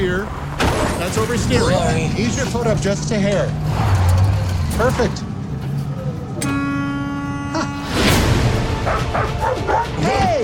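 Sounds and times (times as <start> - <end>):
speech: 0.2 - 4.2, 4.8 - 5.3
drawn-out whining tone: 1.8 - 8.2
dog barking and yipping: 8.8 - 10.0.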